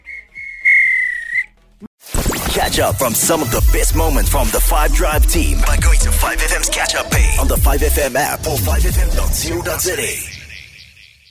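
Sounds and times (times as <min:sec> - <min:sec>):
referee's whistle blasts ending a match: 0:00.0 - 0:01.5
speech: 0:02.6 - 0:10.3.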